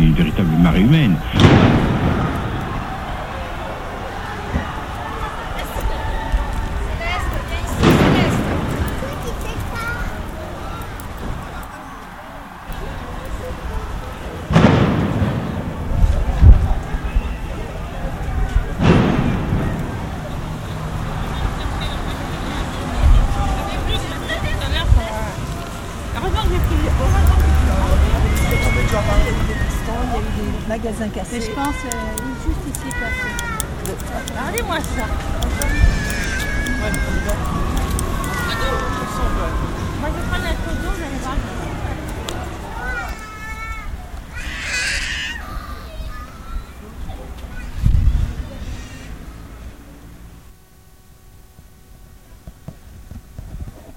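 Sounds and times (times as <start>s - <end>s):
loud sharp blasts during a street clash: 0.0s - 4.9s, 7.7s - 9.9s, 14.5s - 16.6s, 18.8s - 21.8s
crowd roaring and shouting in a street clash with riot police: 0.0s - 49.7s
speech: 0.2s - 1.8s.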